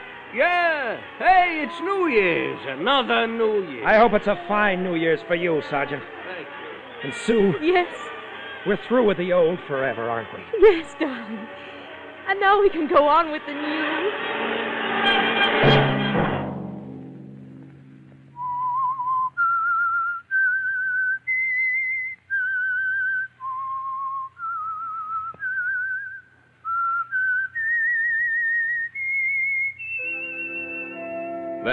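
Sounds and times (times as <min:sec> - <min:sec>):
solo whistled theme melody: 0:00.0 - 0:11.1, 0:18.3 - 0:31.7
loud swell of orchestral sound: 0:00.0 - 0:19.7, 0:30.0 - 0:31.7
speech: 0:00.3 - 0:14.5.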